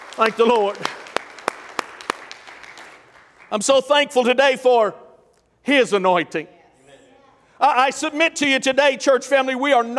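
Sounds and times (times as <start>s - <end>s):
church audience clapping hands: 0.0s - 3.8s
speech: 0.2s - 1.0s, 3.5s - 5.0s, 5.6s - 6.6s, 7.6s - 9.9s.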